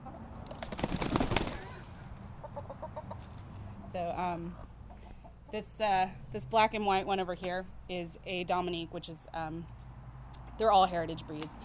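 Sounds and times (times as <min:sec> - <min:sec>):
outdoor ambience: 0:00.0 - 0:11.6
drawn-out chicken squawk: 0:01.5 - 0:03.2
backyard chickens clucking: 0:01.5 - 0:05.8
speech: 0:04.0 - 0:04.7, 0:05.5 - 0:09.8, 0:10.6 - 0:11.6.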